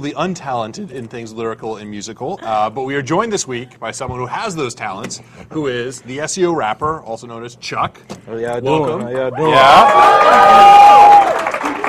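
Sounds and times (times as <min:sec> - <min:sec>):
speech: 0:00.0 - 0:11.5
long high whooping cry: 0:09.4 - 0:11.6
large crowd cheering loudly: 0:09.4 - 0:11.8.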